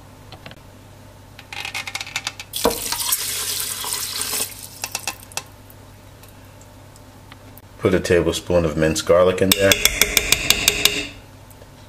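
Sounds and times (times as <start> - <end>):
water pouring into uncooked rice in a pressure cooker: 2.6 - 4.7
speech: 7.8 - 10.2.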